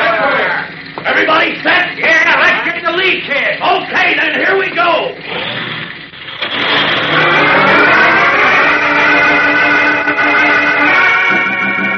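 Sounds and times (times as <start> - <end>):
truck engine roaring out of a dark driveway: 0.0 - 11.9.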